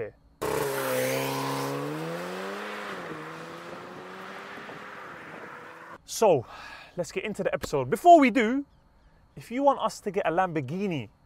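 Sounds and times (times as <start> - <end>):
remapped all-wheel-drive hatchback engine revving as the car accelerates: 0.4 - 6.0
speech: 6.1 - 8.8, 9.4 - 11.2.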